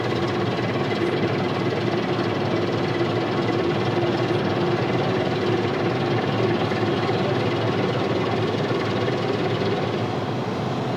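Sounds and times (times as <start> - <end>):
tugboat engine droning while coming alongside a barge: 0.0 - 10.9.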